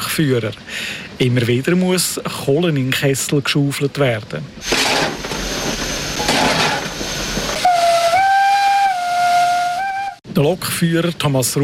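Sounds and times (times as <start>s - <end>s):
speech: 0.2s - 4.9s, 10.4s - 11.6s
steam locomotive hissing: 4.6s - 10.2s
steam locomotive whistle: 7.5s - 10.2s.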